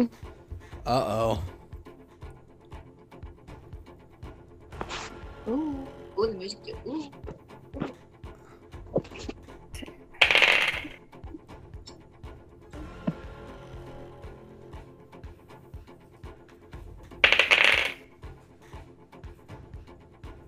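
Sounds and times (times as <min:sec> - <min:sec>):
speech: 0:00.0 - 0:01.6, 0:05.5 - 0:08.0
many dice rolled across a hard tabletop during a tabletop role-playing game: 0:10.2 - 0:11.0, 0:17.2 - 0:18.0.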